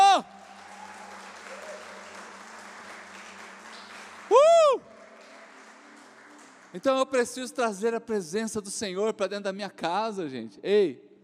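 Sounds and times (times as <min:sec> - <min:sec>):
person shouting: 0:00.0 - 0:00.3
large audience applauding: 0:00.0 - 0:07.7
speech: 0:06.8 - 0:11.1.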